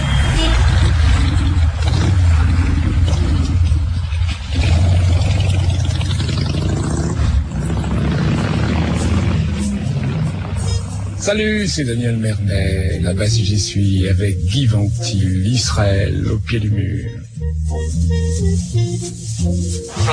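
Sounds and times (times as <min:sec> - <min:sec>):
taxi engines droning and revving as vehicles pass: 0:00.0 - 0:15.2
loud traffic rumble on a busy street: 0:00.0 - 0:17.4
speech: 0:11.3 - 0:20.1.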